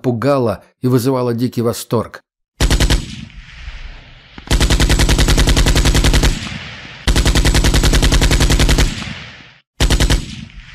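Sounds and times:
speech: 0.0s - 2.2s
Kord automatic rifle firing long rapid bursts: 2.6s - 3.3s, 4.4s - 10.7s.

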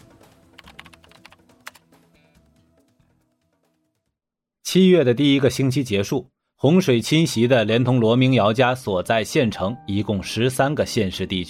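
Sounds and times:
typing on a computer keyboard in a hospital emergency department: 0.6s - 1.8s
speech: 4.7s - 11.4s.

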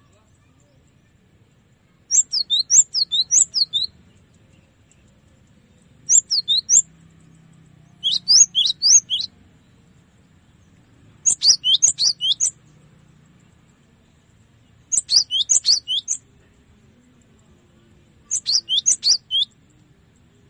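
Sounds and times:
cinereous tit singing tutor song of descending whistled notes: 2.1s - 3.9s, 6.1s - 6.9s, 8.0s - 9.3s, 11.2s - 12.5s, 14.9s - 16.2s, 18.3s - 19.6s.

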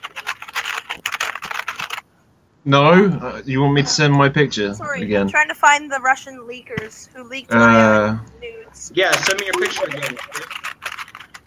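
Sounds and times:
rapid typing on a computer keyboard: 0.0s - 2.0s, 9.2s - 11.4s
speech: 2.6s - 10.6s.

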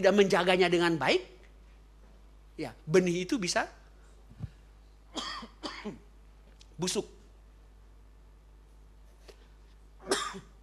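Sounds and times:
speech: 0.0s - 1.4s, 2.6s - 3.8s, 5.2s - 6.0s, 6.8s - 7.2s
preacher coughing during a church sermon: 5.1s - 6.0s, 10.0s - 10.5s.

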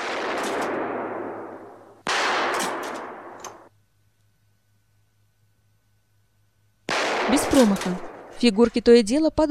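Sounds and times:
gunshots fired at a shooting gallery: 0.0s - 3.7s, 6.9s - 8.5s
faint metallic clicks: 2.6s - 4.4s
speech: 7.4s - 9.5s.

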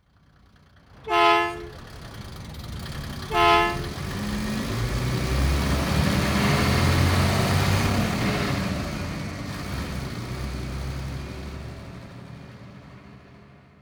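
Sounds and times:
rumbling engine: 0.8s - 13.6s
bus horn honking: 1.0s - 1.9s, 3.2s - 4.3s.

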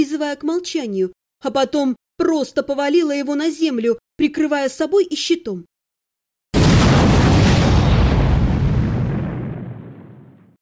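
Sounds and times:
speech: 0.0s - 5.7s
explosion with deep rumbling roar: 6.6s - 10.5s.

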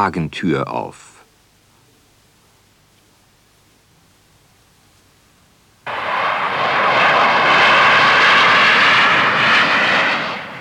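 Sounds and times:
speech: 0.0s - 1.1s
airplane engine roar on a flight: 5.9s - 10.5s.

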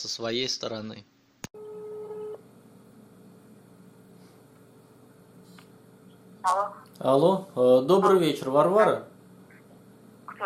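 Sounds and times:
speech: 0.0s - 1.2s, 6.4s - 9.1s
telephone ringback tone on an outgoing call: 1.6s - 2.4s.

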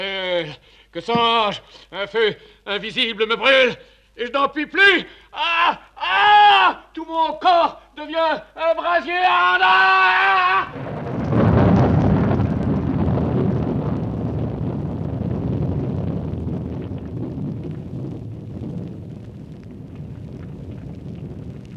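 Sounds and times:
speech: 0.0s - 11.5s
rumbling thunder stage sound effect with lightning: 10.6s - 21.7s.

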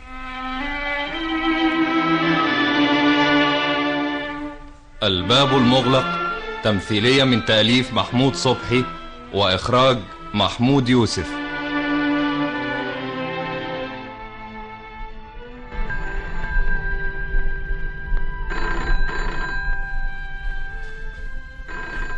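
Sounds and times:
sustained tones: 0.0s - 22.1s
speech: 5.0s - 11.4s
telephone ringing in a dramatized household scene: 5.3s - 9.7s, 15.7s - 22.1s.

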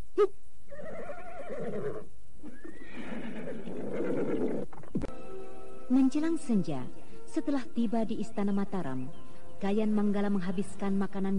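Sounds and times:
speech: 0.2s - 0.4s, 5.9s - 11.3s
horse neighing: 0.7s - 4.9s.

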